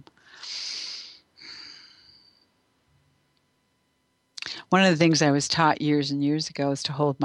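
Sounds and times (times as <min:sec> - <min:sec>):
deep breathing in and out: 0:00.2 - 0:02.4
speech: 0:04.7 - 0:07.2.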